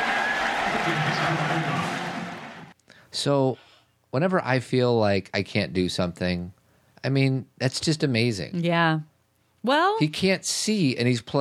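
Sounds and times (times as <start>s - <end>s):
stadium crowd cheering at a football game: 0.0s - 2.8s
speech: 0.8s - 2.0s, 3.1s - 11.3s.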